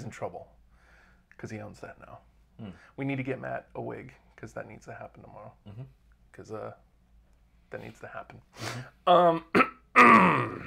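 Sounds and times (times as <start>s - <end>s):
speech: 0.1s - 0.6s, 1.4s - 6.9s, 7.7s - 10.6s
man clearing his throat: 9.2s - 10.6s.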